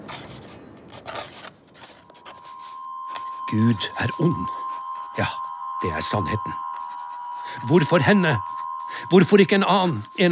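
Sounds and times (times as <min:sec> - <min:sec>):
pen scratching on paper writing a diary: 0:00.1 - 0:03.3, 0:06.8 - 0:07.0
speech: 0:03.5 - 0:04.6, 0:05.2 - 0:06.6, 0:07.6 - 0:10.2.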